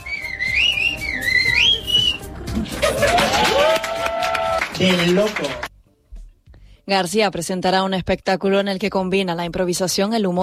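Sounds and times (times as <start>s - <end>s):
person whistling a phrase in the Gomeran whistled language of La Gomera: 0.0s - 2.3s
laughter: 2.2s - 3.9s
applause and cheering: 2.6s - 5.7s
speech: 4.8s - 5.7s, 6.9s - 10.4s.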